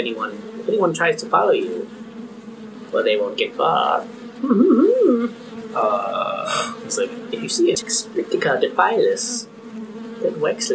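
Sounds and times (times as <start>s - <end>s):
speech: 0.0s - 2.0s, 2.9s - 10.7s
wasp buzzing: 0.0s - 10.7s.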